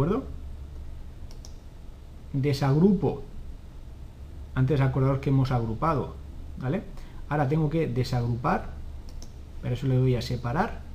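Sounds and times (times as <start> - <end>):
speech: 0.0 - 0.4, 2.3 - 3.3, 4.6 - 8.8, 9.6 - 10.8
low steady hum: 0.0 - 10.9
computer mouse double click: 1.2 - 1.6, 9.1 - 9.4.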